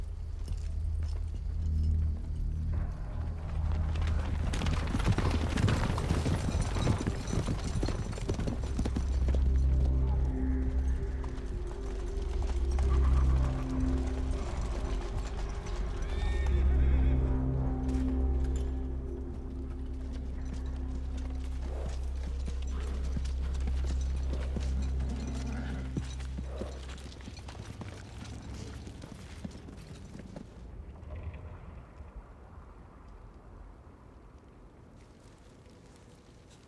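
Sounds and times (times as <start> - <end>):
horses setting off with clip-clopping hoofbeats: 0.0 - 31.4
horses whinnying: 4.7 - 17.3, 21.5 - 27.4.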